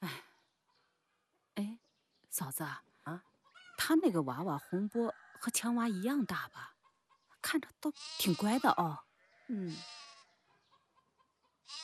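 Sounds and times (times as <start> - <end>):
speech: 2.3 - 3.3, 3.9 - 6.8, 7.5 - 10.1
lamb bleating: 7.9 - 10.3, 11.7 - 11.8.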